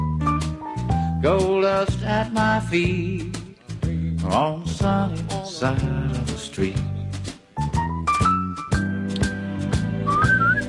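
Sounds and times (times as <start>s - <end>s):
bouncy instrumental accompaniment with a steady rhythmic beat: 0.0s - 10.6s
speech: 1.2s - 3.4s, 4.3s - 6.9s
person whistling a bright sliding melody: 10.0s - 10.6s.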